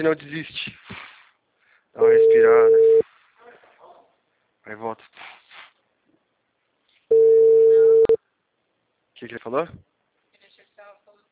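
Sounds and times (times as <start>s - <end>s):
speech: 0.0s - 1.0s, 2.0s - 3.0s, 4.7s - 5.3s, 9.2s - 9.9s
outgoing telephone call ringing tone: 2.0s - 3.0s, 7.1s - 8.2s.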